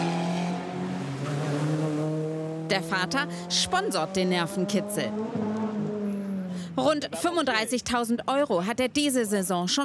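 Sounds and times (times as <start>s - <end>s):
race car engine roaring through a chicane at a racing event: 0.0s - 7.2s
speech: 2.7s - 5.6s, 6.8s - 9.8s.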